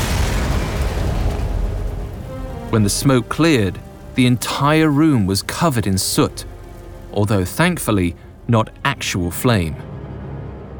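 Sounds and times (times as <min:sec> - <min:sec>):
fireplace in a tower apartment exploding with a roaring boom: 0:00.0 - 0:06.9
speech: 0:02.7 - 0:06.5, 0:07.1 - 0:09.9.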